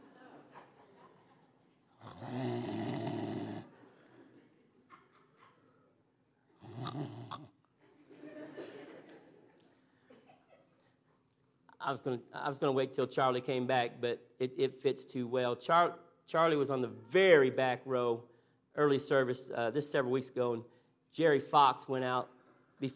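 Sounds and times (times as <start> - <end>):
people chuckling: 0.0 - 1.8, 3.7 - 5.9, 7.8 - 10.9
loud wet rattling snoring: 2.0 - 3.7, 6.6 - 7.5
speech: 11.9 - 22.9.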